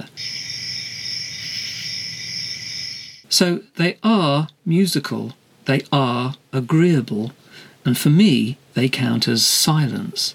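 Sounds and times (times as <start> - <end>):
cicadas chirring: 0.0 - 3.3
speech: 3.3 - 10.3.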